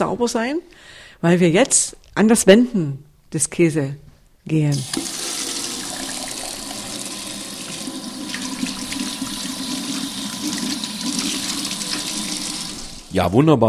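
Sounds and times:
speech: 0.0 - 5.1, 13.2 - 13.6
water running from a brass tap into enamel buckets during hand washing: 4.7 - 13.2.

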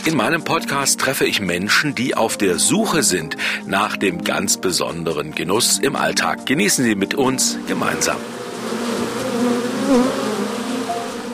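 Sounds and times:
speech: 0.0 - 9.1, 9.9 - 10.3
many honeybees buzzing at a beehive stand: 7.4 - 11.3.

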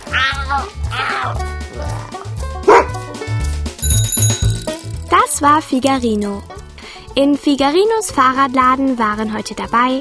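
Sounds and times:
whiny meow-like animal cries: 0.0 - 2.3
bouncy rhythmic music bed: 0.0 - 9.9
speech: 0.5 - 2.1, 5.4 - 6.5, 7.2 - 9.9
dog yelping and barking: 2.7 - 3.0.

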